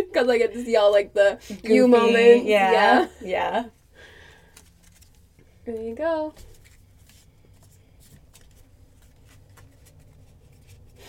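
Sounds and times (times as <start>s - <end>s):
speech: 0.2s - 3.8s, 5.6s - 6.5s
stiff thick new playing cards being shuffled: 4.4s - 5.4s, 6.4s - 11.0s.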